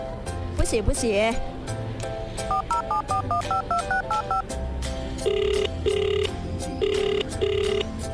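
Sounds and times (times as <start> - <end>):
speech: 0.7 - 8.1
telephone keypad dialing tones: 2.5 - 4.4, 5.2 - 7.9.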